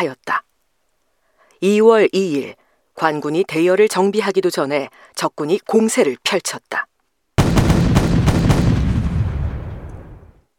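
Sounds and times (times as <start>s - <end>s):
speech: 0.0s - 0.4s, 1.6s - 6.9s
heavy booming cannon shots: 7.4s - 10.4s
long rumbling echo: 7.4s - 10.4s.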